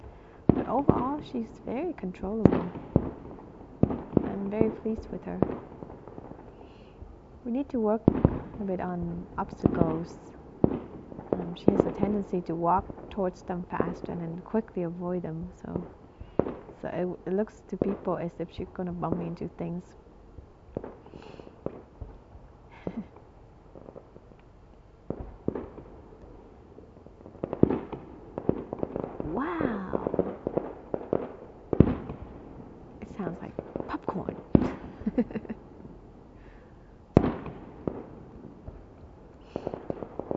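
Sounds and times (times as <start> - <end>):
firecrackers crackling and banging: 0.0 - 13.2, 20.7 - 24.2, 25.1 - 26.3, 27.1 - 40.3
speech: 0.7 - 3.4, 4.4 - 5.8, 7.4 - 10.4, 11.4 - 16.0, 16.8 - 20.0.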